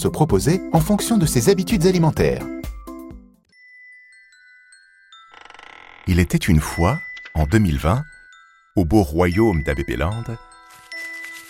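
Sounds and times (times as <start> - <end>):
speech: 0.0 - 2.6, 6.1 - 8.1, 8.8 - 10.5
refrigerator alert chime: 5.2 - 11.4.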